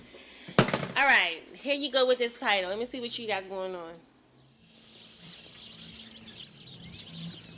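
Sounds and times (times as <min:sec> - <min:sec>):
speech: 0:01.0 - 0:04.1
low hum of city traffic: 0:01.4 - 0:07.5
chorus of many small birds chirping in a sidewalk tree: 0:04.2 - 0:07.5.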